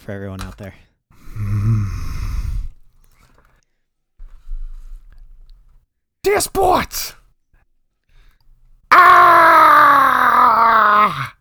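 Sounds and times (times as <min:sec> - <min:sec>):
speech: 0:00.1 - 0:02.0, 0:06.2 - 0:07.2
person screaming: 0:08.9 - 0:11.3.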